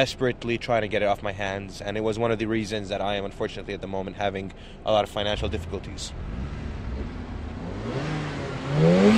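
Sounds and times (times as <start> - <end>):
speech: 0.0 - 6.6
car engine revving in car park: 5.3 - 9.1.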